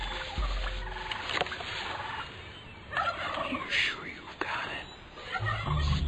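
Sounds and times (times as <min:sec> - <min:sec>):
turkey gobbling during a turkey hunt: 0:00.0 - 0:03.8, 0:05.2 - 0:06.0
steady outdoor noise: 0:00.0 - 0:06.0.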